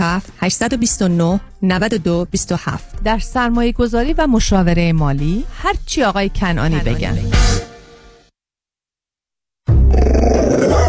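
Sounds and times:
speech: 0.2s - 7.5s
pit bull growling: 9.9s - 10.8s.

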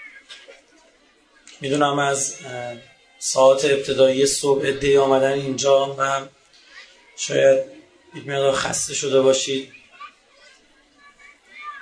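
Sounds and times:
steady moderately quiet murmur: 0.0s - 11.7s
young children chattering and calling out at a religious mourning gathering: 0.0s - 11.7s
speech: 1.6s - 6.4s, 7.2s - 9.8s.

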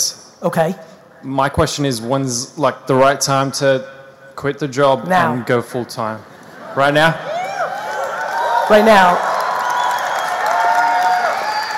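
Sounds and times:
speech: 0.4s - 7.3s, 8.7s - 9.3s
crowd applauding: 6.6s - 11.7s.

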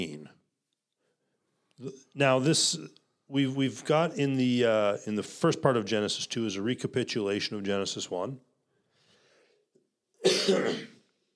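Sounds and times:
speech: 1.8s - 8.5s, 10.4s - 10.9s
harsh cough: 10.2s - 11.1s.

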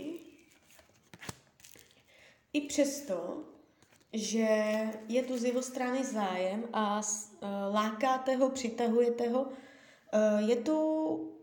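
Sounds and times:
tarot cards being drawn and shuffled with papery rustling: 0.3s - 2.1s, 3.8s - 4.2s
speech: 2.6s - 11.3s.

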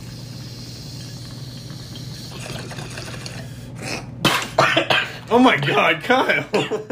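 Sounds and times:
water bubbling through a bong: 0.0s - 4.4s
person coughing: 3.9s - 5.3s
speech: 5.3s - 6.9s.

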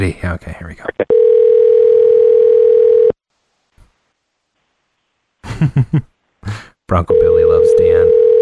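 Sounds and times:
speech: 0.0s - 1.2s, 5.6s - 8.2s
outgoing telephone call ringback tone, unanswered: 1.1s - 3.2s, 7.1s - 8.3s
burst of laughter: 5.5s - 6.1s.

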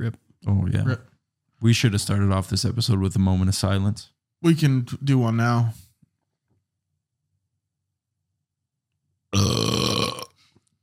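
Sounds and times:
speech: 0.0s - 1.0s, 1.6s - 5.8s
person drinking beer burping: 9.3s - 10.4s.

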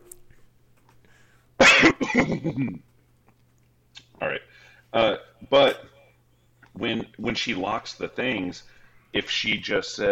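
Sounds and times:
person coughing: 1.6s - 2.8s
throat clearing: 1.6s - 2.8s
speech: 2.2s - 2.9s, 4.9s - 5.8s, 6.8s - 10.1s.

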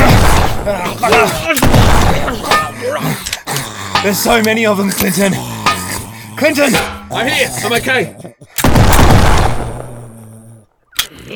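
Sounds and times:
gunfire from a gun fired until it runs out of bullets: 0.0s - 2.8s, 8.6s - 10.0s
speech: 4.0s - 5.6s, 6.4s - 8.6s.

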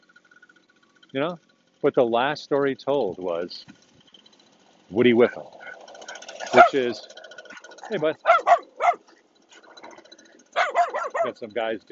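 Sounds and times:
speech: 1.1s - 3.8s, 4.9s - 5.6s, 6.5s - 7.2s, 7.9s - 8.3s, 11.3s - 11.9s
dog whining yips: 5.6s - 6.8s, 7.5s - 9.7s, 10.5s - 11.4s
dog barking: 5.6s - 6.9s, 7.5s - 9.1s, 9.8s - 11.4s.

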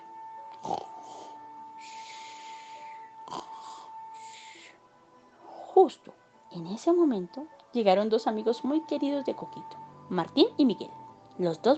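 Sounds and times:
loud snoring with whistling exhales: 0.6s - 2.3s, 3.2s - 4.6s
speech: 5.8s - 11.7s.

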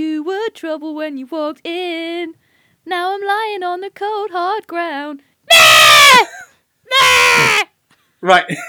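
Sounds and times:
speech: 0.0s - 8.6s
baby goat screaming: 5.5s - 7.7s.

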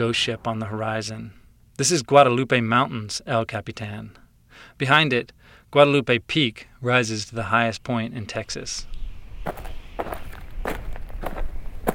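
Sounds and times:
speech: 0.0s - 10.3s
footsteps hiking up a dry wash of bleached white limestone rocks: 9.5s - 11.9s.

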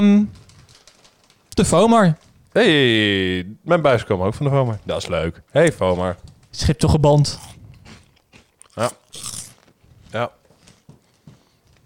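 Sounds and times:
speech: 0.0s - 0.4s, 1.6s - 7.6s, 8.8s - 9.3s, 10.1s - 10.4s
crunching of chips being bitten: 7.2s - 9.7s
chewing and mouth sounds: 7.2s - 9.8s.

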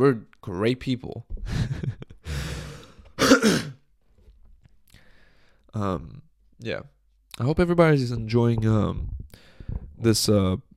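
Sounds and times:
speech: 0.0s - 2.0s, 3.4s - 3.7s, 5.7s - 10.7s
harsh coughing into a microphone: 3.2s - 3.8s
rough throat-clearing rasp into a microphone: 3.2s - 3.8s.

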